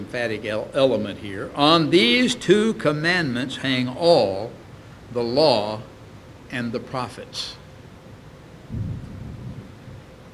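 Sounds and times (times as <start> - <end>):
speech: 0.0 - 5.9, 6.5 - 7.6
thunder rumbling: 8.7 - 10.1.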